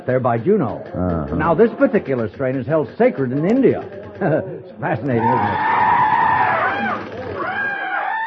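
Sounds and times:
speech: 0.0s - 5.9s
laughter: 0.9s - 8.1s
Indian peafowl crying: 5.1s - 8.2s.

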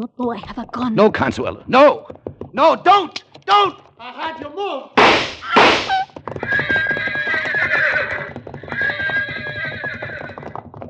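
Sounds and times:
speech: 0.0s - 6.6s
rapid pounding hoofbeats: 1.7s - 10.8s
sharp loud burst: 5.0s - 6.0s
horses neighing and whinnying shrilly: 5.0s - 10.8s.

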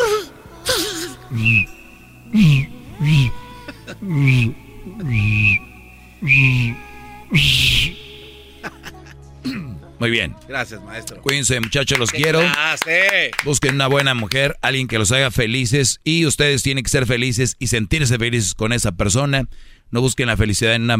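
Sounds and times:
gasping, whimpering vocal sounds: 0.0s - 1.5s, 2.3s - 5.4s
speech: 1.3s - 2.7s, 10.1s - 20.9s
short breathy whistle blasts: 1.3s - 3.4s, 4.2s - 8.6s
laughter: 3.6s - 4.2s, 8.6s - 9.2s.

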